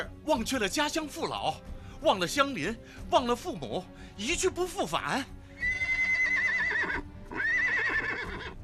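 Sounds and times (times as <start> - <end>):
speech: 0.0 - 5.4
horse neighing: 5.6 - 8.6.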